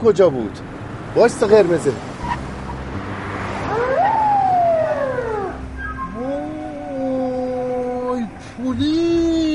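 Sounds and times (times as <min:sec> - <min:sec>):
speech: 0:00.0 - 0:02.1, 0:08.6 - 0:09.3
traffic police car siren wailing: 0:03.6 - 0:08.2.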